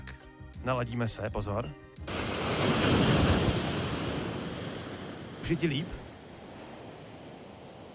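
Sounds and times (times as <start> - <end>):
speech: 0.6 - 3.0, 5.5 - 6.0
ocean surf rolling and breaking on shore: 2.0 - 7.9.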